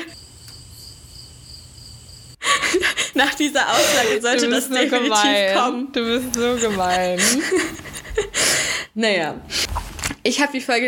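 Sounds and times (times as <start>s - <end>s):
cricket chirping sound effect: 0.0s - 2.6s
laughter: 2.4s - 8.5s
speech: 3.2s - 7.9s, 9.0s - 9.6s, 10.2s - 10.8s.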